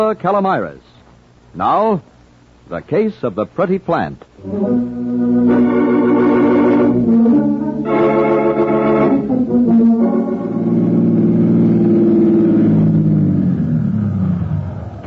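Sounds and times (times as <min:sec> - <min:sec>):
speech: 0:00.0 - 0:02.1, 0:02.7 - 0:05.8
car engine humming while driving through New York traffic: 0:04.4 - 0:15.0.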